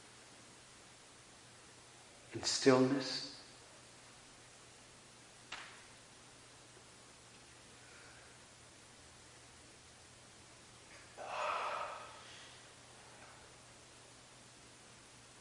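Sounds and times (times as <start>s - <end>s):
steady quiet hiss: 0.0s - 15.3s
speech: 2.3s - 3.3s
person yawning: 11.2s - 12.6s.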